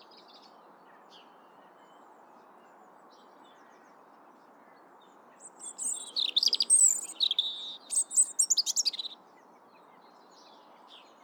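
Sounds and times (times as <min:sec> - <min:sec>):
European robin singing: 0:05.4 - 0:09.2.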